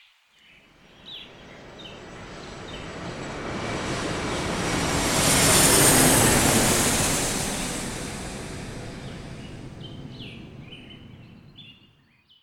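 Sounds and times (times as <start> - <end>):
private jet engine roaring with high whine: 0.7 - 11.6.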